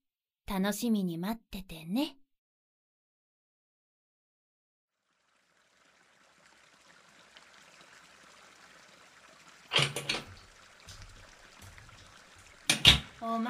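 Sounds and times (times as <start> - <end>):
speech: 0.5 - 2.2, 13.2 - 13.4
shower water running: 5.1 - 13.4.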